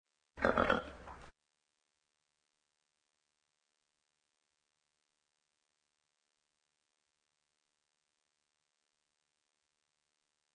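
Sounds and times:
horse snorting: 0.4s - 1.3s.

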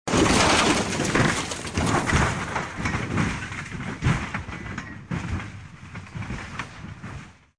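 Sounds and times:
car falling off a cliff: 0.1s - 7.5s.

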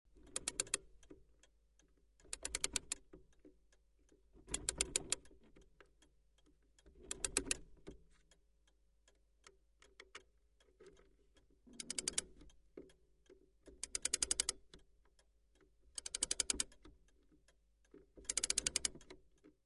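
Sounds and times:
small clock being wound: 0.2s - 8.4s, 9.1s - 19.6s.

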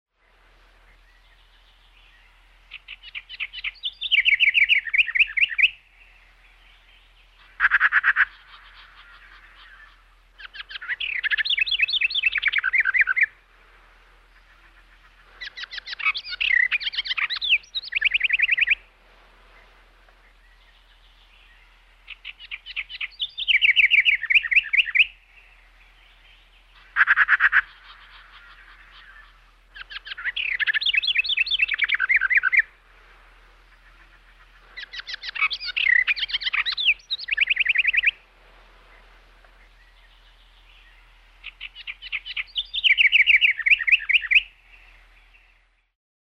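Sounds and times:
beautiful singing in a forest: 0.1s - 46.0s
magpie: 7.4s - 13.4s, 14.4s - 18.8s, 22.1s - 25.2s, 26.7s - 32.8s, 33.6s - 38.2s, 40.9s - 44.6s.

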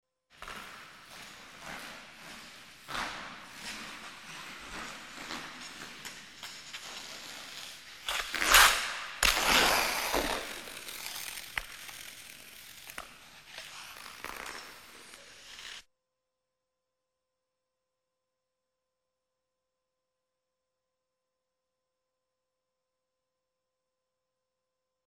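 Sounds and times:
ice skates approaching and jumping: 0.4s - 15.9s.

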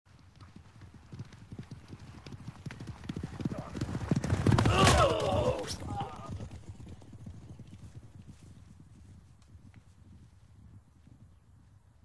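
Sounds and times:
two knights jousting with lances on horseback: 3.4s - 8.4s.

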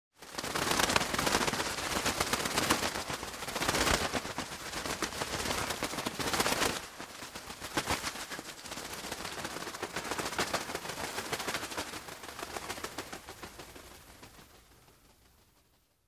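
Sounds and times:
bird wings flapping in flight: 0.2s - 16.0s.

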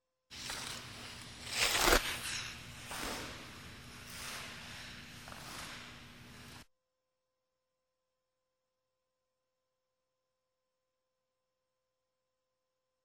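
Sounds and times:
ice skating: 0.3s - 6.7s.

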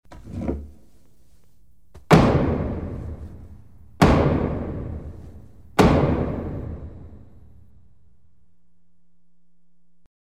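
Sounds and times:
judge's gavel striking in a courtroom: 2.0s - 7.3s.

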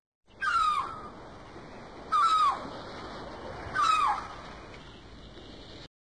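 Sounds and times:
seagulls crying: 0.3s - 2.9s, 3.5s - 5.0s
waves: 0.3s - 5.9s.

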